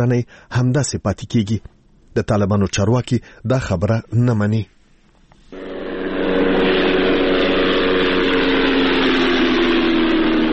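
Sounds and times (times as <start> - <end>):
speech: 0.0 - 4.8
unmanned drone flying over Ghazni Afghanistan: 5.5 - 10.5.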